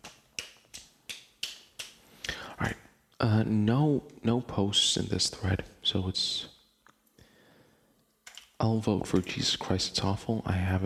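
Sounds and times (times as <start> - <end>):
hand claps: 0.0 - 2.4
speech: 2.6 - 6.5, 8.6 - 10.8.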